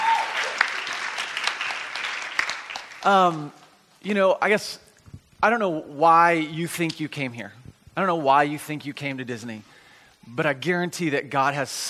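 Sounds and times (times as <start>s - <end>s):
audience clapping: 0.0s - 3.4s
speech: 3.0s - 4.8s, 5.4s - 11.8s.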